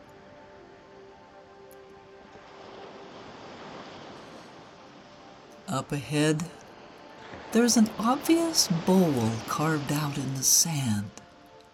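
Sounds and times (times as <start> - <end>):
ocean surf waves breaking on the shore: 2.0 - 11.7
speech: 5.7 - 6.6, 7.5 - 11.2.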